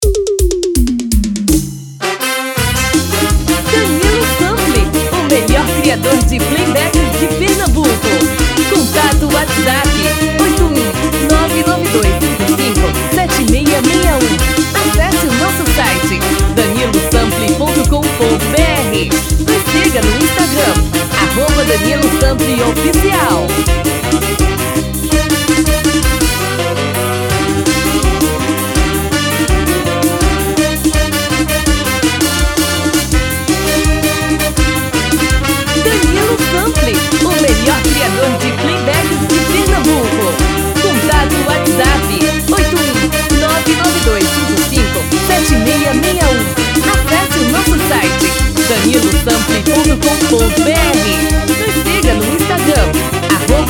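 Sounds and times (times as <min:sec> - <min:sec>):
frevo music: 0:00.0 - 0:53.6.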